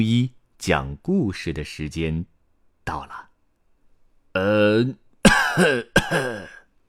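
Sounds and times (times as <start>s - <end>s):
speech: 0.0s - 3.3s, 4.4s - 5.0s, 5.6s - 6.6s
grandfather clearing throat: 5.2s - 6.7s.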